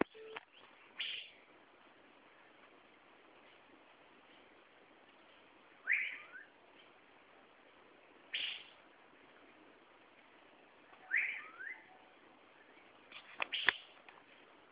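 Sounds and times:
quiet background hiss: 0.0 - 14.6
Asian fairy-bluebird calling with liquid whistled notes: 5.9 - 6.5, 11.0 - 12.0.

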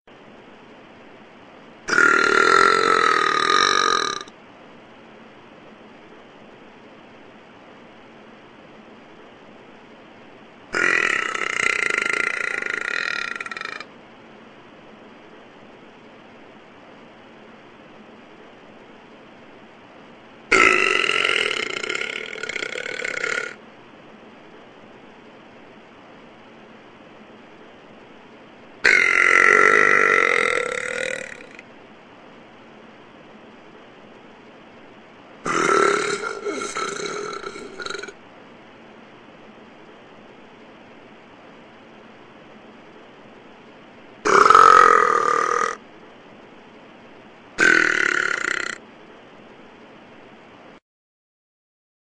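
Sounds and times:
person burping: 1.9 - 4.3, 10.8 - 13.8, 20.5 - 23.6, 28.8 - 31.6, 35.5 - 38.2, 44.3 - 45.8, 47.6 - 48.8.

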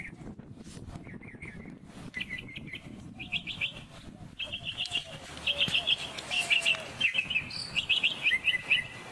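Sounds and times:
northern mockingbird song: 1.0 - 9.0.

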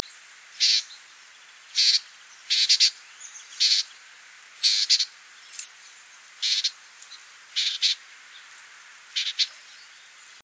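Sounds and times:
Bewick's wren Thryomanes bewickii giving harsh buzzy call notes: 0.6 - 0.9, 1.7 - 3.0, 3.6 - 3.9, 4.5 - 5.7, 6.4 - 6.8, 7.6 - 8.0, 9.1 - 9.6.

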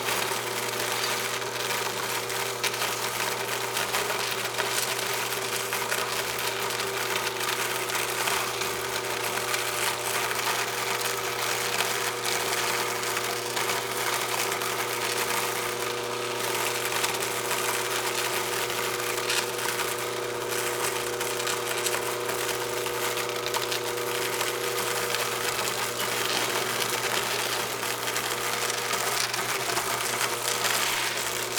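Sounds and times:
cacao grinder running in a chocolate factory workshop: 0.0 - 31.5.

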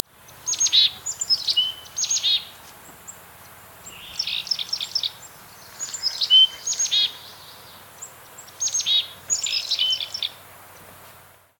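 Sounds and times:
Black-capped Chickadee Poecile atricapillus buzzy chattering calls: 0.3 - 3.2, 3.8 - 10.4.

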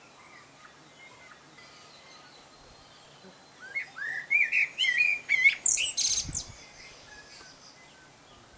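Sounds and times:
male common blackbird song: 0.0 - 8.5.

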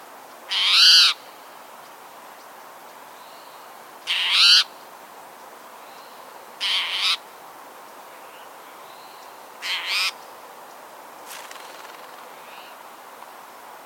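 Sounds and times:
Spotted towhee Pipilo maculatus giving raspy mewing calls: 0.5 - 1.2, 4.1 - 4.7, 6.6 - 7.2, 9.6 - 10.2.

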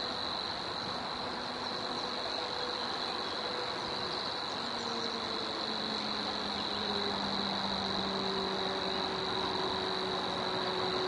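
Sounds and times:
Savi's warbler Locustella luscinioides reeling song: 0.0 - 11.0
steady background noise: 0.0 - 11.0.

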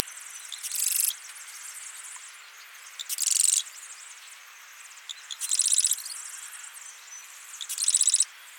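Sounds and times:
constant high hiss: 0.0 - 8.5
marsh wren Cistothorus palustris buzzy rattles: 3.0 - 3.6, 5.1 - 6.0, 7.6 - 8.2.

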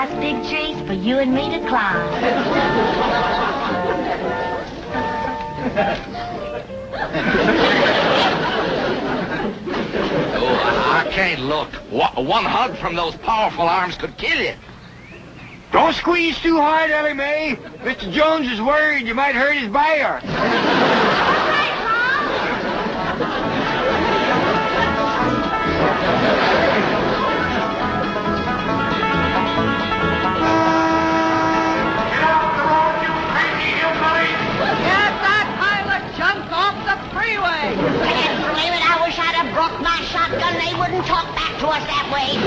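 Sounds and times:
speech: 0.0 - 5.0, 5.6 - 14.7, 15.7 - 21.2, 39.6 - 42.4
dense noisy road traffic: 0.0 - 42.4
voices shouting and chattering: 0.0 - 42.4
laughter: 2.0 - 11.5, 17.4 - 18.5, 20.2 - 28.8, 30.4 - 36.8, 37.5 - 39.1, 42.3 - 42.4
car horns honking in dense road traffic: 2.2 - 6.9, 23.6 - 35.9.

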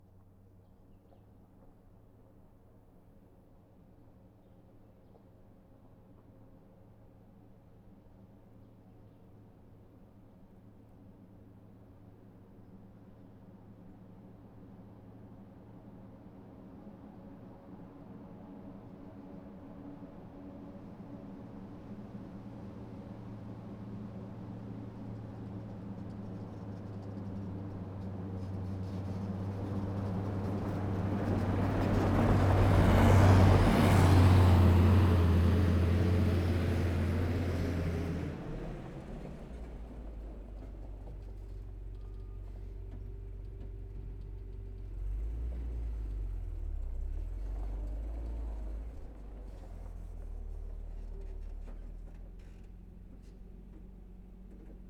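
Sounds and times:
M8 Greyhound armored car passing by, stopping and turning around at various speeds: 29.4 - 54.1.

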